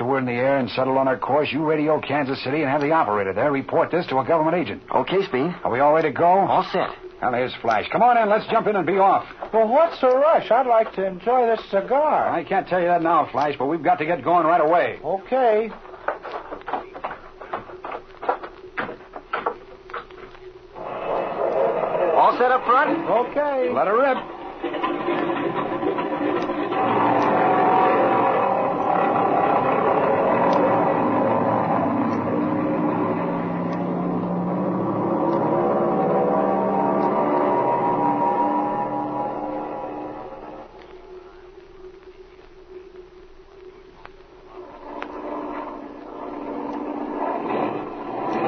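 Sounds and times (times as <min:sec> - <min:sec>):
speech: 0:00.1 - 0:15.8, 0:22.8 - 0:25.2
airplane engine droning and misfiring: 0:20.8 - 0:40.9, 0:44.5 - 0:48.4.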